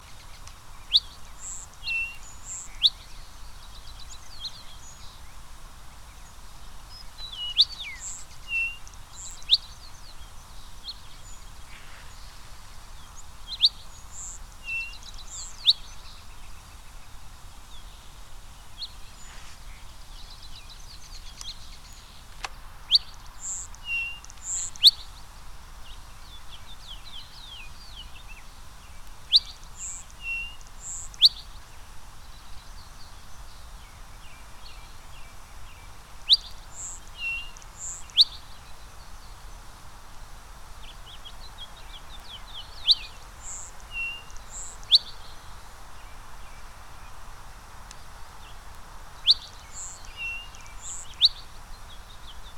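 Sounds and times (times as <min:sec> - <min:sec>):
Sierra Madre sparrow Xenospiza baileyi: 0:00.0 - 0:05.2, 0:06.2 - 0:17.0, 0:18.8 - 0:25.2, 0:29.2 - 0:31.7, 0:36.2 - 0:39.2, 0:40.8 - 0:45.4, 0:49.2 - 0:52.5.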